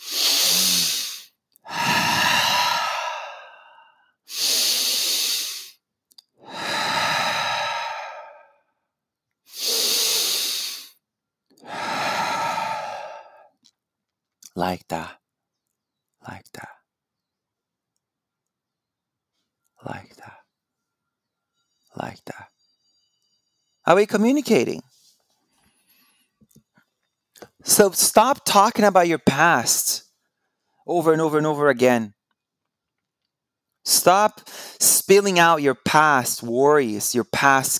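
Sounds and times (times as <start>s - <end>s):
slow deep breaths in and out: 0.0s - 5.8s, 6.4s - 8.8s, 9.5s - 11.0s, 11.6s - 13.6s
speech: 14.6s - 15.2s, 23.9s - 24.8s, 27.8s - 30.0s, 30.9s - 32.2s, 33.8s - 37.7s.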